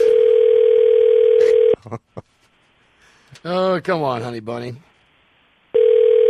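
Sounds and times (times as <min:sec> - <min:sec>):
telephone dial tone while placing a call: 0:00.0 - 0:01.8, 0:05.8 - 0:06.2
speech: 0:01.9 - 0:02.4, 0:03.4 - 0:04.9.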